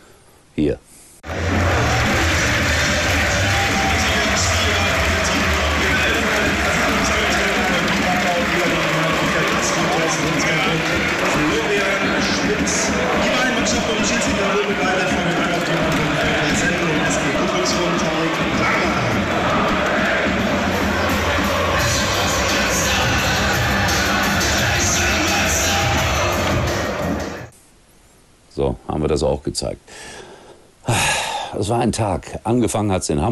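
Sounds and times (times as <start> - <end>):
speech: 0.6 - 0.9, 12.4 - 19.9, 28.6 - 30.2, 31.6 - 33.3
large crowd of football fans cheering and celebrating promotion: 1.2 - 27.5.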